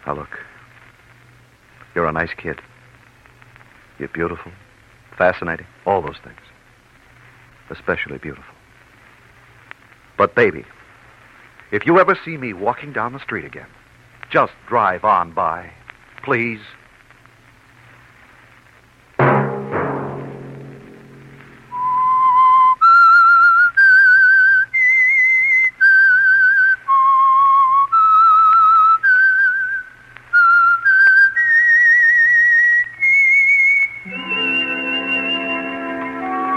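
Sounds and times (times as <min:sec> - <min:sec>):
speech: 0:00.0 - 0:00.5, 0:02.0 - 0:02.7, 0:04.0 - 0:06.6, 0:07.7 - 0:08.6, 0:10.2 - 0:10.8, 0:11.7 - 0:16.8
held instrumental chord: 0:19.2 - 0:21.8
musical hit: 0:19.2 - 0:22.0
person whistling a slow eerie melody: 0:21.7 - 0:29.8, 0:30.4 - 0:36.5.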